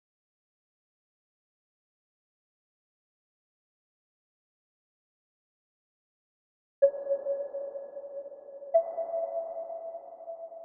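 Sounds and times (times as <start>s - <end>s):
F sharp minor synth pluck loop: 6.8s - 10.6s.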